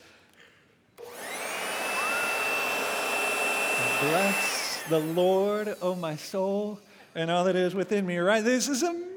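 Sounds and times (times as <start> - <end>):
blower running in a garage: 1.0 - 6.9
speech: 4.0 - 9.1.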